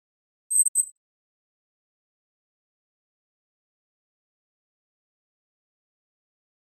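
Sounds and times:
flash double electronic beep: 0.5 - 0.9.

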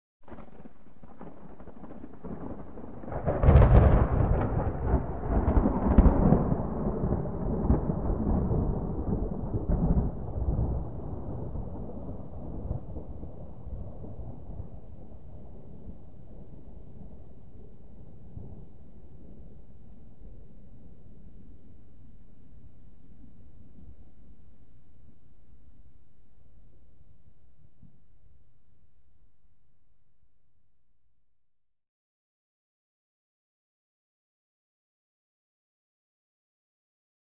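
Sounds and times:
distant gentle thunder: 0.2 - 22.3.

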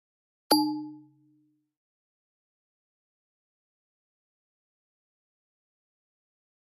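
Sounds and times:
electronic flash beep ping: 0.5 - 1.0.

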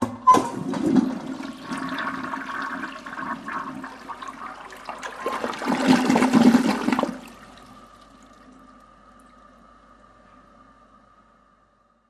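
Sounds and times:
toilet in a home bathroom: 0.0 - 9.6.

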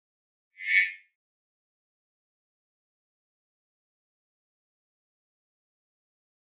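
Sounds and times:
electronic mouse over sound: 0.6 - 1.0.

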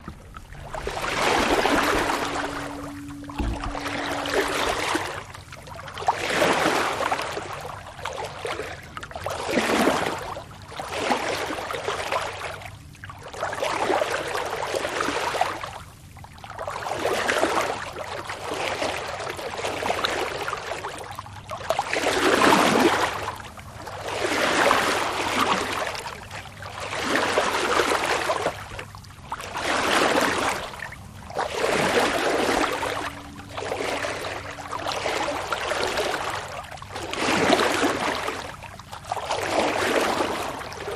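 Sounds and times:
sailboat wake and bow wash: 0.0 - 40.9.

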